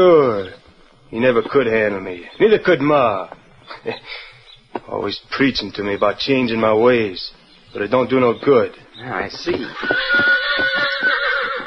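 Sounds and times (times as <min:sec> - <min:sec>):
speech: 0:00.0 - 0:10.9
horse neighing: 0:09.5 - 0:11.6
laughter: 0:09.5 - 0:11.6.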